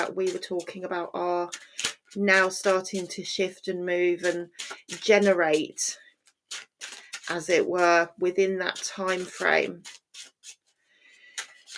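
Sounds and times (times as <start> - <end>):
speech: 0.0 - 6.7, 7.3 - 10.0
deck of cards shuffling: 1.4 - 3.2, 4.1 - 8.0, 8.7 - 11.7.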